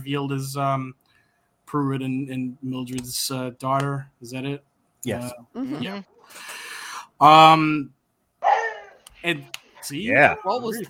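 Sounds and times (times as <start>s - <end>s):
speech: 0.0s - 1.0s, 1.7s - 6.6s, 7.2s - 8.0s, 9.2s - 10.8s
dog barking: 8.4s - 9.0s
dog yelping: 8.4s - 9.1s.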